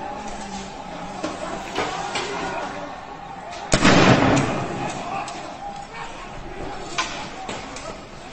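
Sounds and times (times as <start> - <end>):
murmur of crowd noise and indistinct voices: 0.0 - 8.3
gunshot: 3.7 - 5.1.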